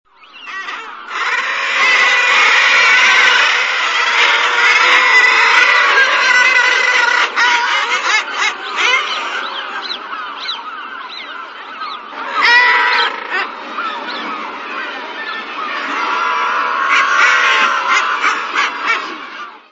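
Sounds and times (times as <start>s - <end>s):
black guillemot calling: 0.3s - 19.7s.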